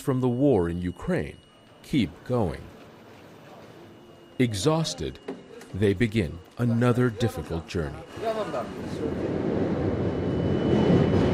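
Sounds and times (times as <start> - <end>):
speech: 0.0 - 2.8, 4.4 - 9.5
train departing a station in eastern Poland: 8.8 - 11.3.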